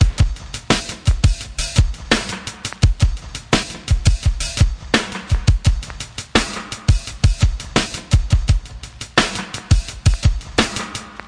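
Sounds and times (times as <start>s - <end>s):
85 bpm compressed drum loop break: 0.0s - 11.2s.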